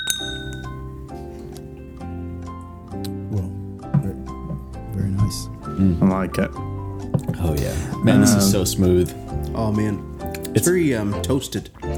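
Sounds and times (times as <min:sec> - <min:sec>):
glasses of rum clinking in a toast: 0:00.0 - 0:00.9
speech: 0:05.3 - 0:11.8.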